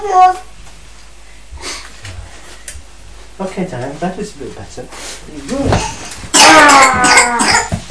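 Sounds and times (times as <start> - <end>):
speech: 0.0 - 0.5, 3.4 - 6.1, 6.8 - 7.6
harsh throaty coughing: 7.0 - 7.8.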